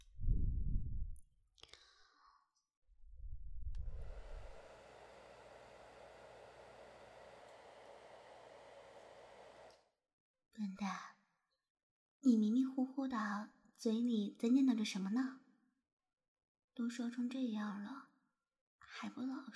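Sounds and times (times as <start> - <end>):
soft low thumps: 0.0 - 1.2
hair dryer blowing while drying hair: 3.6 - 9.9
speech: 10.6 - 11.1, 12.2 - 15.4, 16.8 - 18.1, 18.8 - 19.5.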